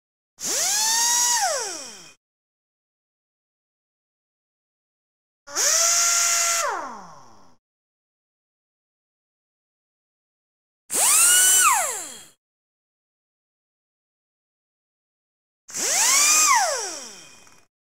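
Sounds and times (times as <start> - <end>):
power drill: 0.4 - 2.2, 5.5 - 7.3, 10.9 - 12.4, 15.7 - 17.7.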